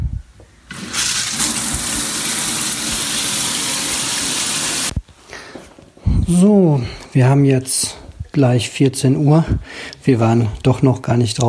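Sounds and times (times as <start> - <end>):
shower water running: 0.7 - 5.0
speech: 6.3 - 11.4.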